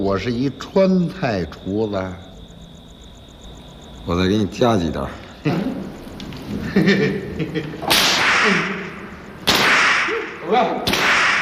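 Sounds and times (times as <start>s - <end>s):
speech: 0.0s - 2.3s, 4.0s - 5.9s, 6.5s - 8.8s, 10.5s - 11.0s
laughter: 5.4s - 9.0s
whip cracking: 7.8s - 11.4s.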